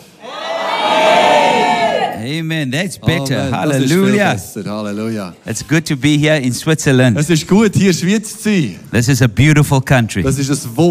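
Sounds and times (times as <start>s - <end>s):
large audience shouting in unison: 0.2s - 2.2s
speech: 2.3s - 10.8s.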